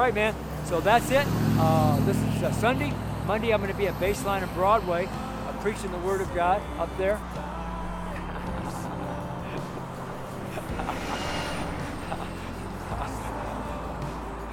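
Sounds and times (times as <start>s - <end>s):
speech: 0.0s - 7.5s
city bus engine rumbling along a street: 0.0s - 14.5s
general traffic noise: 0.0s - 14.5s.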